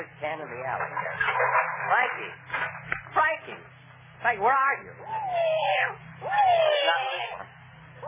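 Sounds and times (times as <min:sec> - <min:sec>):
low hum: 0:00.0 - 0:08.0
speech: 0:00.0 - 0:08.0
cat meowing in an alley: 0:05.1 - 0:07.5.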